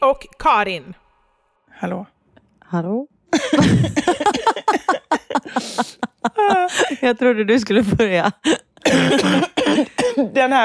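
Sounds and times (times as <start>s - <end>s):
speech: 0.1s - 1.0s, 1.8s - 10.6s
deep chesty phlegmy cough: 3.3s - 6.0s, 8.5s - 10.5s
laughter: 3.4s - 7.2s.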